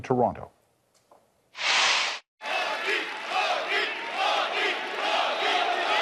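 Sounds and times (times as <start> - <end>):
speech: 0.0 - 0.6
large crowd cheering in Toronto: 2.4 - 6.0.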